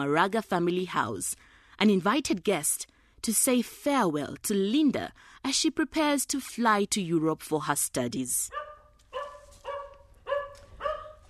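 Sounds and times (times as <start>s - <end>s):
speech: 0.0s - 8.6s
dog barking at a guest at the front door: 8.5s - 11.2s.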